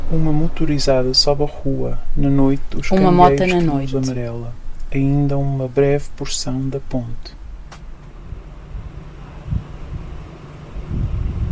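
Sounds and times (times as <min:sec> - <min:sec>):
speech: 0:00.1 - 0:07.4
strong wind roaring through trees: 0:08.2 - 0:11.5
wind buffeting the microphone: 0:10.8 - 0:11.5.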